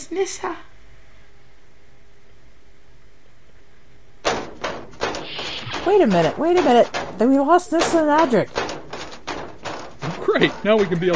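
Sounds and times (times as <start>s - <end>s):
speech: 0.1s - 0.7s, 5.9s - 8.6s, 10.3s - 11.1s
automatic door sliding: 4.3s - 11.1s.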